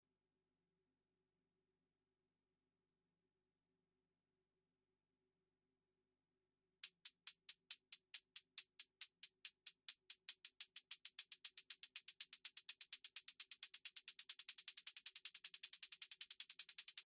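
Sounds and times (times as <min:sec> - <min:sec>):
closed hi-hat: 0:06.8 - 0:17.0.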